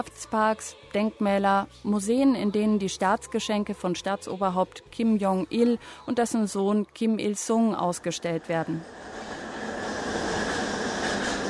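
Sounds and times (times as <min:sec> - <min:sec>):
speech: 0:00.0 - 0:09.2
subway train in motion: 0:07.5 - 0:11.4.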